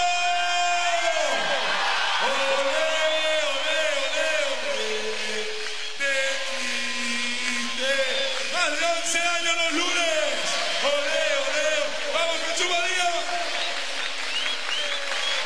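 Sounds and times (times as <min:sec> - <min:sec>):
large crowd shouting and cheering in Jesús María: 0:00.0 - 0:15.4.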